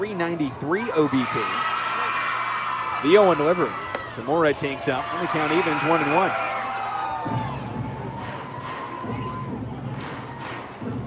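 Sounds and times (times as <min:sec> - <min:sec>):
speech: 0:00.2 - 0:01.7, 0:03.0 - 0:06.4
large crowd of children screaming in a ballpark: 0:00.9 - 0:09.6.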